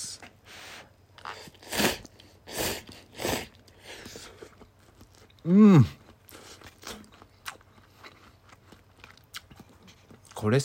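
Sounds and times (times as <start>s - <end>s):
wet chewing of instant ramen noodles: 1.1s - 10.4s
slurping: 1.2s - 7.1s
speech: 5.4s - 6.0s, 10.5s - 10.6s.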